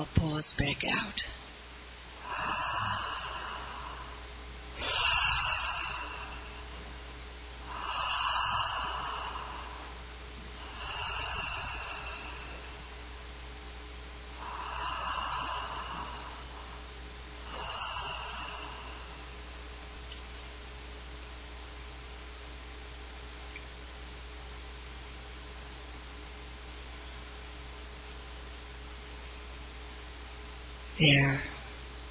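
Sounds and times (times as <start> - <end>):
faint steady hum: 0.0 - 32.0
speech: 0.4 - 1.5, 31.0 - 31.5
deep breaths taken during a meditation: 2.2 - 13.3, 14.3 - 19.6.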